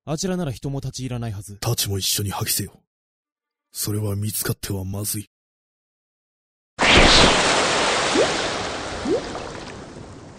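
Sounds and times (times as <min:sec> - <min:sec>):
speech: 0:00.1 - 0:02.9, 0:03.7 - 0:05.3
flowing river water: 0:07.1 - 0:10.3.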